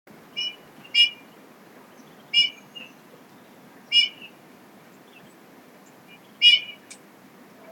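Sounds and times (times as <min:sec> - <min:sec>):
Eurasian bullfinch Pyrrhula pyrrhula whistled calls: 0:00.4 - 0:01.2, 0:02.2 - 0:03.0, 0:03.9 - 0:04.4, 0:06.1 - 0:06.9.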